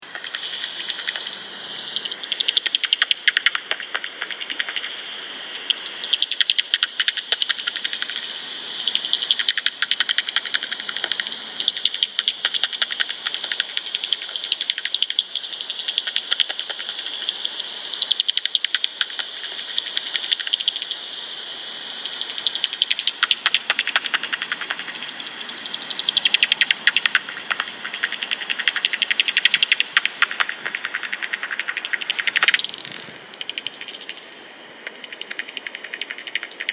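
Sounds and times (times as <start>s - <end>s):
bats: 0.0s - 21.2s, 22.0s - 36.7s.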